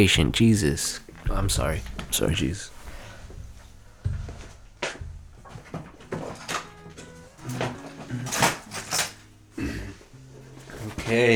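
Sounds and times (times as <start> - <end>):
speech: 0.0 - 2.7, 11.1 - 11.3
handling and shuffling noises: 0.4 - 11.3
keys jingling and clinking: 1.2 - 9.5.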